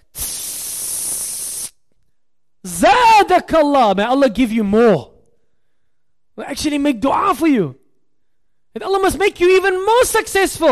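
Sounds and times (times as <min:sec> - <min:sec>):
aerosol spray hissing: 0:00.0 - 0:01.8
speech: 0:02.6 - 0:05.1, 0:06.6 - 0:07.8, 0:08.8 - 0:10.7.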